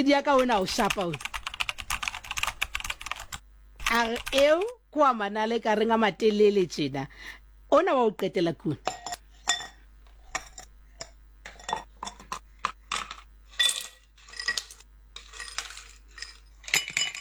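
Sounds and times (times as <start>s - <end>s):
speech: 0.0s - 1.3s, 3.9s - 9.0s
ice cubes clinking into a glass: 13.0s - 17.1s.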